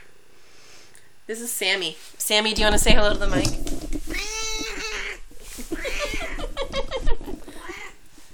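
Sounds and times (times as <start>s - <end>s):
speech: 1.5s - 3.7s
cat meowing: 4.1s - 6.5s, 7.5s - 8.0s
laughter: 5.5s - 7.6s.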